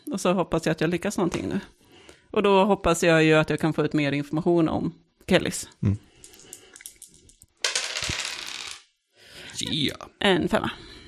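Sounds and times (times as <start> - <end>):
speech: 0.2 - 6.1, 9.6 - 10.9
two dice tumbling and rattling across a hard surface: 6.2 - 8.9.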